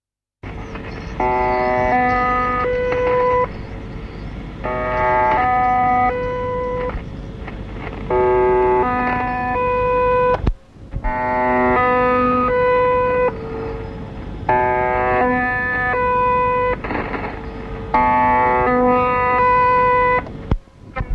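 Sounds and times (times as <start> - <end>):
3-note interval signal: 1.1 - 7.1, 8.1 - 10.5, 11.1 - 20.4.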